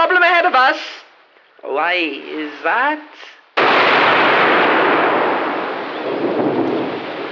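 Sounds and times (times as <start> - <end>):
speech: 0.6 - 1.0, 1.6 - 4.7
cannon fire blast with heavy roaring rumble: 3.6 - 7.3.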